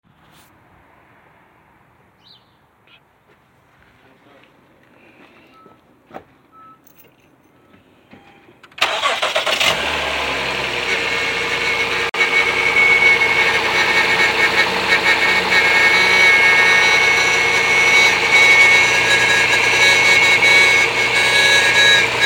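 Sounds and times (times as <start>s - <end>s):
2g RDX engine cold start: 8.7s - 22.2s.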